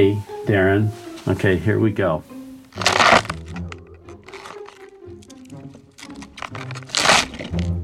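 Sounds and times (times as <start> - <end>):
speech: 0.0 - 2.3
celery stalk twisted and broken as bone-crunch foley: 2.7 - 7.8.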